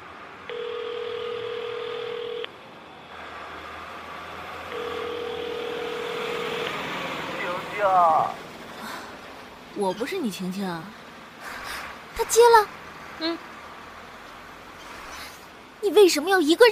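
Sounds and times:
phone ringback tone: 0.5s - 2.5s, 4.7s - 6.7s
speech: 7.8s - 8.4s, 9.8s - 11.0s, 12.2s - 13.5s, 15.8s - 16.6s.

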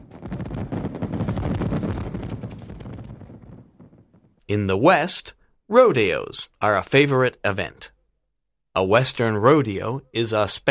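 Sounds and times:
fireworks exploding: 0.0s - 4.4s
speech: 4.5s - 8.0s, 8.8s - 10.6s.

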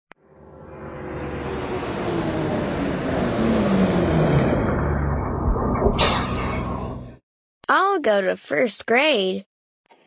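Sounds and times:
heavy bus engine rumbling: 1.1s - 7.1s
bus air brakes hissing: 6.0s - 6.7s
speech: 7.7s - 9.5s.

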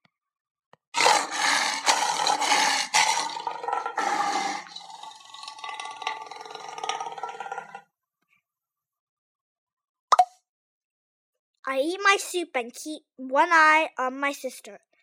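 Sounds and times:
human voice imitating a tiger roar: 1.0s - 7.8s
speech: 11.7s - 14.9s.

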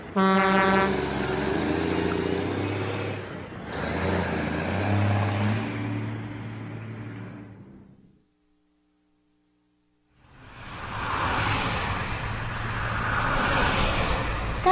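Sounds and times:
busy city street traffic roaring: 0.0s - 7.9s, 10.2s - 14.7s
car horn blaring: 0.1s - 1.0s.

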